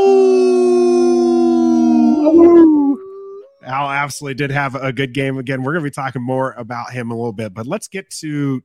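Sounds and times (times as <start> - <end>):
wolf howling: 0.0 - 3.5
speech: 4.0 - 8.6.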